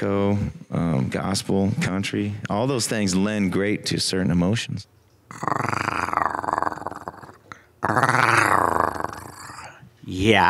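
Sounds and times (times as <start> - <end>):
speech: 0.0 - 5.8, 10.2 - 10.4
person growling like a tiger: 5.3 - 9.8.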